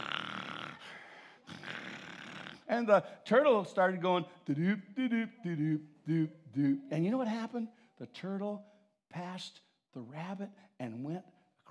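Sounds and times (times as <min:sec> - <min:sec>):
voice imitating snoring: 0:00.0 - 0:02.7
speech: 0:02.7 - 0:11.6.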